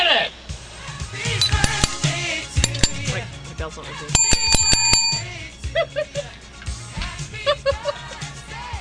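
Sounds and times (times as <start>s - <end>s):
small handheld bell ringing: 1.4s - 3.2s, 4.2s - 5.4s
speech: 3.7s - 4.4s
people laughing: 5.7s - 6.4s, 7.4s - 8.3s.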